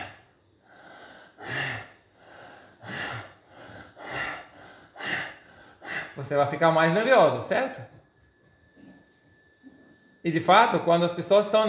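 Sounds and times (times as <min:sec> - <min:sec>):
sharp inhalations through the nose in a breathing exercise: 0:00.0 - 0:06.2
speech: 0:06.2 - 0:08.0, 0:10.2 - 0:11.6.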